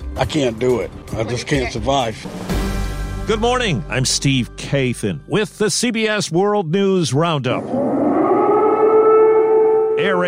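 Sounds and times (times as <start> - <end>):
speech: 0.2 - 2.6, 3.3 - 8.0, 10.0 - 10.2
civil defense siren wailing in Kyiv: 7.6 - 10.2.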